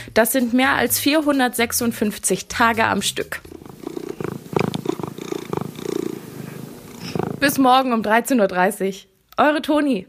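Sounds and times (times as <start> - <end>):
speech: 0.1 - 3.5, 7.5 - 10.0
cat purring: 1.7 - 8.0.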